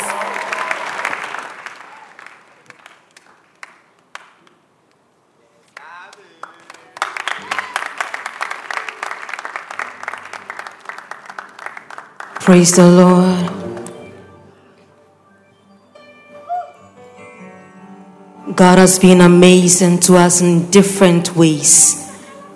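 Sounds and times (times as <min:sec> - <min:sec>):
crowd clapping: 0:00.0 - 0:05.0, 0:05.6 - 0:14.4
speech: 0:12.5 - 0:13.5, 0:18.8 - 0:22.0.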